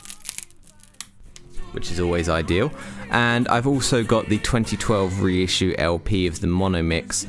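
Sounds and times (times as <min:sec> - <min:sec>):
paper sleeve of a vinyl record being pulled open: 0:00.0 - 0:01.5
speech: 0:01.7 - 0:07.2.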